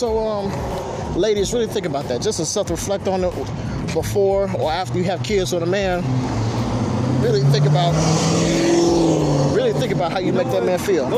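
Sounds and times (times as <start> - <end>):
speech: 0.0 - 6.6, 7.2 - 11.1
loud muscle car with a chopped muffler rumbling past: 4.5 - 11.1.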